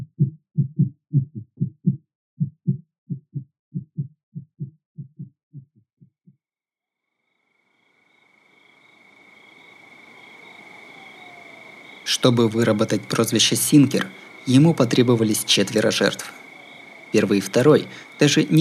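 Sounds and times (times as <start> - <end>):
deep heartbeat thumps: 0.0 - 6.4
speech: 12.1 - 16.4, 17.1 - 18.5.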